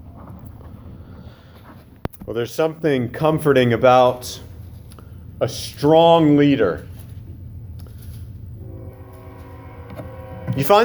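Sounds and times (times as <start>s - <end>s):
speech: 2.3s - 4.5s, 5.4s - 6.9s, 10.6s - 10.8s
train rumbling past on tracks behind a building: 8.4s - 10.8s
sustained horn-like tone: 8.6s - 10.8s.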